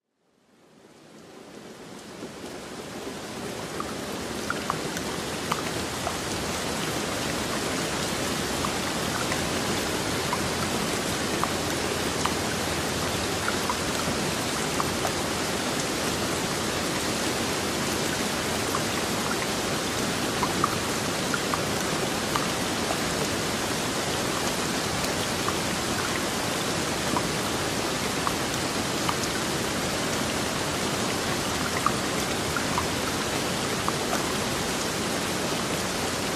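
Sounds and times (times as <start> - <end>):
heavy rain in a forest: 0.2 - 36.3.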